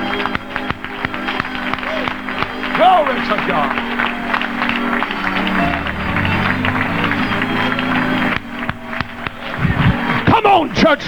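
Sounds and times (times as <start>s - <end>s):
audience clapping hands in a steady rhythm: 0.0s - 11.0s
murmur of voices in a large room: 0.0s - 11.0s
sustained musical tone: 2.7s - 10.2s
speech: 2.8s - 3.9s, 10.9s - 11.0s.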